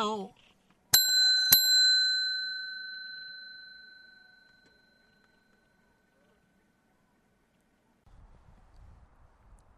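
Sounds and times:
speech: 0:00.0 - 0:00.4
small metallic bell ringing: 0:01.0 - 0:06.1.

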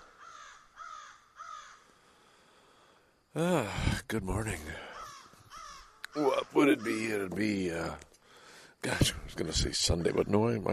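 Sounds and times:
crows cawing in tall pines in rural Ontario: 0:00.0 - 0:03.0, 0:04.8 - 0:08.7
speech: 0:03.4 - 0:04.9, 0:06.1 - 0:08.1, 0:08.8 - 0:10.7.

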